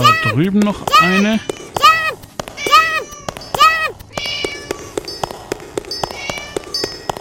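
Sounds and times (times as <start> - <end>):
synthetic cat meows from a video game: 0.0 - 5.0, 6.1 - 6.8
speech: 0.4 - 1.6
video game coin collection chiming pings and clicks: 3.1 - 7.2.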